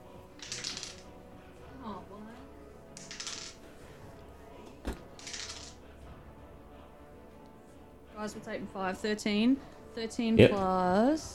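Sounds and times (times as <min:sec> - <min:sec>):
dice rolling and clattering across a hard surface: 0:00.4 - 0:01.2, 0:03.0 - 0:03.7, 0:05.2 - 0:05.8
speech: 0:08.2 - 0:11.3.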